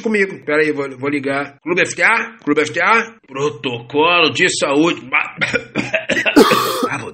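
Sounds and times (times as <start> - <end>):
speech: 0.0 - 7.1
harsh breathy cough: 5.4 - 7.1
short voiced throat sounds: 6.3 - 7.0.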